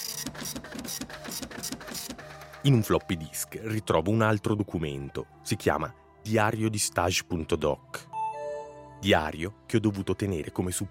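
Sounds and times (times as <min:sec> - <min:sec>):
printer printing a letter: 0:00.0 - 0:02.7
speech: 0:02.6 - 0:08.1, 0:09.0 - 0:10.8.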